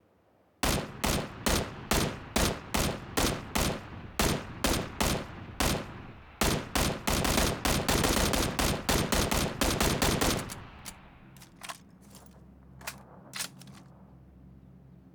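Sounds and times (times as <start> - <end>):
M16 rifle single shot: 0.6 - 12.2, 12.8 - 13.9.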